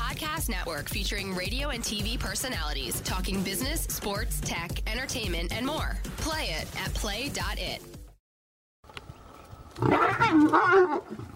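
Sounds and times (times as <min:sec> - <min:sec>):
speech: 0:00.4 - 0:08.0, 0:09.8 - 0:11.3
lion roaring: 0:09.8 - 0:11.3.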